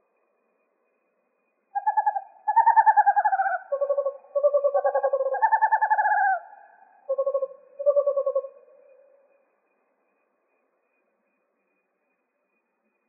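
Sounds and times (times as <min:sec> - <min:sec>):
western screech owl tremulous trills in Arizona: 0:01.7 - 0:09.4.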